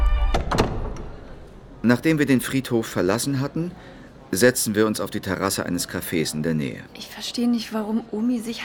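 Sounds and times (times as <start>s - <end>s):
small door opening with a thunk: 0.1s - 1.4s
speech: 1.8s - 8.6s.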